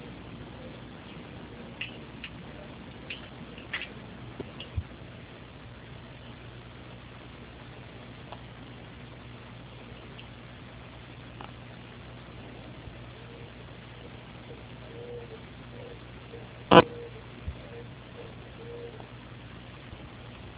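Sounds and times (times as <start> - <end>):
steady hum: 0.0 - 20.5
owl hooting: 13.2 - 19.1.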